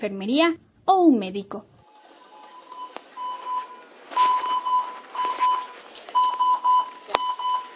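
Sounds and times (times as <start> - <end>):
speech: 0.0 - 1.7
faint noise: 0.0 - 7.7
medical ventilator alarm beeping: 2.2 - 7.7.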